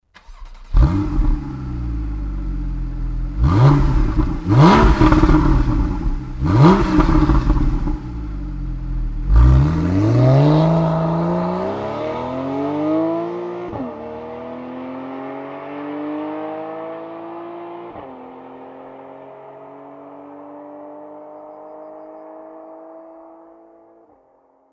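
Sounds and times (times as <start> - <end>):
911 Carrera S with sport exhaust system: 0.7 - 14.6.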